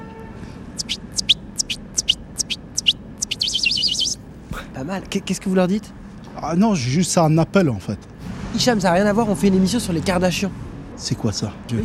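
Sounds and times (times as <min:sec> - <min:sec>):
man whistling an imitation of a bird call: 0:00.8 - 0:04.2
speech: 0:04.8 - 0:11.8.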